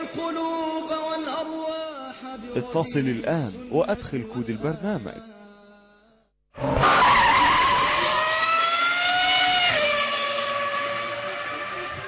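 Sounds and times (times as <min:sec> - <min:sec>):
speech: 0:00.1 - 0:05.4, 0:06.6 - 0:07.0
tires screeching in a mobile car racing video game: 0:06.6 - 0:12.0.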